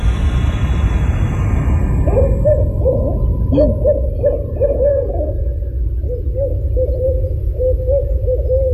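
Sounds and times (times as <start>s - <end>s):
steady low rumble: 0.0s - 8.7s
two owls hooting to each other: 2.1s - 8.7s.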